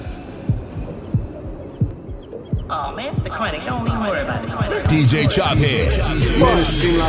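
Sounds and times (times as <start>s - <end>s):
fast heartbeat: 0.0s - 5.5s
speech: 3.0s - 7.0s.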